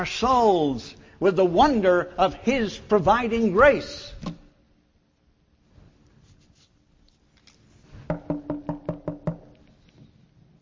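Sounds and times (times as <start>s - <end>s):
speech: 0.0s - 4.4s
knuckles knocking on a wooden door: 8.1s - 9.4s.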